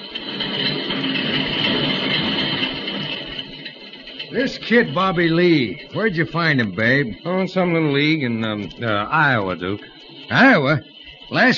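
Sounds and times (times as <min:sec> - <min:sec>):
train rolling along the rails: 0:00.0 - 0:11.5
speech: 0:04.4 - 0:11.5.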